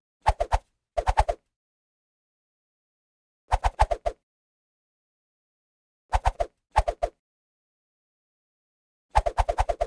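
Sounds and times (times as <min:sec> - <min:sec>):
light fast swishes: 0:00.2 - 0:01.4, 0:03.5 - 0:04.2, 0:06.1 - 0:07.2, 0:09.1 - 0:09.8.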